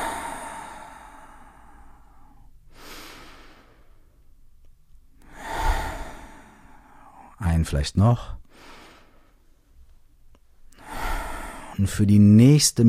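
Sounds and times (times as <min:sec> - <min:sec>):
deep slow breaths in and out: 0:00.0 - 0:04.4, 0:05.2 - 0:07.4, 0:08.2 - 0:09.8, 0:10.6 - 0:11.9
speech: 0:07.6 - 0:08.4, 0:11.8 - 0:12.8.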